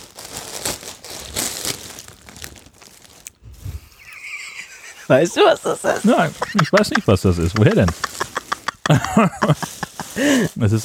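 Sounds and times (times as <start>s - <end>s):
plastic Amazon mailer bag torn open by hand: 0.0s - 3.4s
plastic mailer bag crinkling and rustling: 0.0s - 10.8s
laughter: 3.8s - 10.8s
speech: 5.1s - 8.1s, 8.9s - 10.8s.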